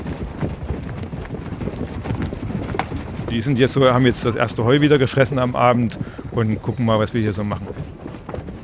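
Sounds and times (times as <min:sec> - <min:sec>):
Przewalski's horses' hooves clopping on hard ground: 0:00.0 - 0:08.6
faint wind noise: 0:00.0 - 0:08.6
speech: 0:03.3 - 0:07.9.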